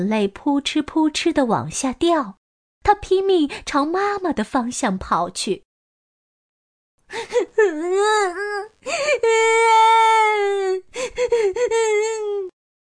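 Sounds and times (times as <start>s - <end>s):
speech: 0.0s - 5.7s, 7.1s - 12.5s
person acting out loud crying and sobbing: 7.1s - 12.6s.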